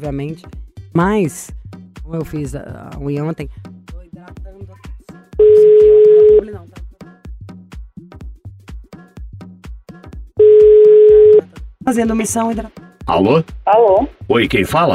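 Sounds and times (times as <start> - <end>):
speech: 0.0 - 4.4, 11.9 - 14.9
ringback tones of an outgoing telephone call: 5.4 - 6.5, 10.4 - 11.5.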